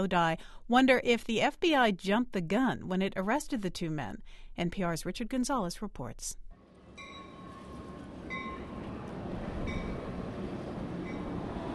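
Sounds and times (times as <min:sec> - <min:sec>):
speech: 0:00.0 - 0:06.4
passenger train rumbling through town: 0:06.7 - 0:11.7
high metallic squeals or chimes: 0:06.9 - 0:11.6.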